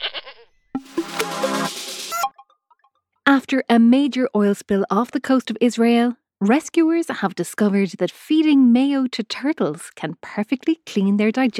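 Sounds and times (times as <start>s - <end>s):
goat bleating: 0.0s - 0.5s
speech: 3.3s - 11.5s.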